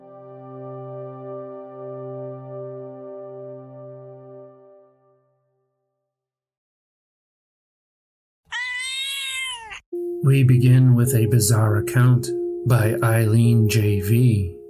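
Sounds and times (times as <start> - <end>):
cat meowing: 8.5 - 9.9
speech: 10.2 - 14.6.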